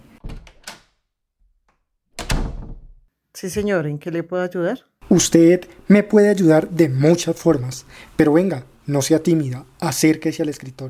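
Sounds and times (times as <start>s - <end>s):
office door swinging and clunking shut: 0.1s - 0.8s, 2.2s - 3.0s
office door latching closed with a resonant thud: 0.2s - 0.9s, 2.2s - 3.0s
speech: 3.4s - 10.8s.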